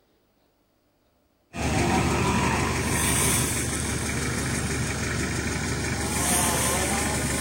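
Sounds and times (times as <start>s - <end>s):
race car engines roaring: 1.6s - 7.3s.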